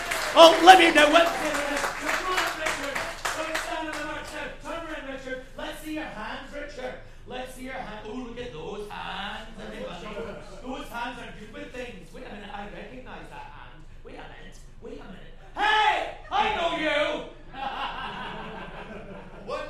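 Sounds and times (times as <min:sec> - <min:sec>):
laughter: 0:00.0 - 0:04.0, 0:09.5 - 0:11.2, 0:16.2 - 0:19.6
audience clapping for an audience member called up at a show: 0:00.0 - 0:04.5
speech: 0:00.4 - 0:01.7.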